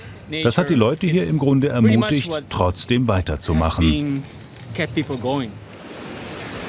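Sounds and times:
speech: 0:00.3 - 0:05.6
ocean surf waves breaking: 0:05.2 - 0:06.6.

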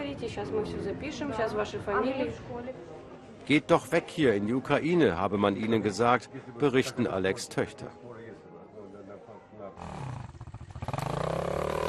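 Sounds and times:
speech: 0:00.2 - 0:08.1
motocross dirt bike engines revving: 0:10.6 - 0:11.8.

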